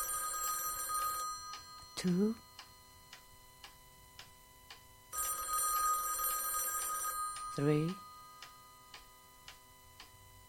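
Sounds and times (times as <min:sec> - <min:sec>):
old-style telephone bell ringing: 0:00.0 - 0:03.0, 0:05.1 - 0:08.9
speech: 0:02.0 - 0:02.5, 0:07.6 - 0:08.0.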